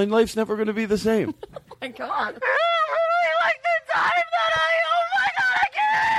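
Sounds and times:
speech: 0:00.0 - 0:02.8
person mimicking a man screaming: 0:02.4 - 0:06.1.

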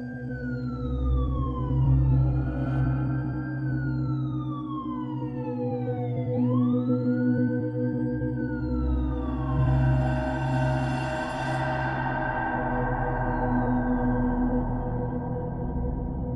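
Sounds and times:
wailing sirens of arriving ambulances and police: 0:00.2 - 0:16.2.

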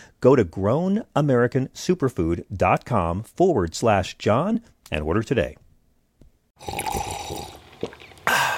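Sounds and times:
speech: 0:00.2 - 0:05.6, 0:06.6 - 0:07.1
wet slurping sip of hot morning coffee: 0:06.6 - 0:08.5.

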